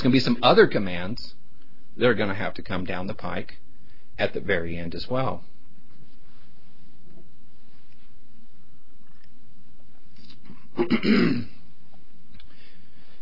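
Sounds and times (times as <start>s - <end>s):
speech: 0.0s - 1.4s, 2.0s - 3.6s, 4.2s - 5.5s, 10.8s - 11.6s
faint steady hum: 0.0s - 13.2s
person clearing throat: 10.5s - 11.6s.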